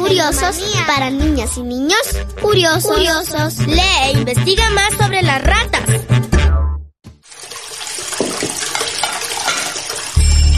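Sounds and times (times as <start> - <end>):
speech: 0.2 - 6.2
water running from a tap: 7.1 - 10.5.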